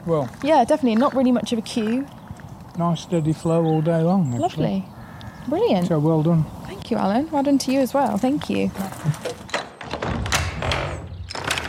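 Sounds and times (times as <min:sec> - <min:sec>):
speech: 0:00.0 - 0:02.2, 0:02.8 - 0:09.5
front door being pushed shut: 0:09.2 - 0:11.6.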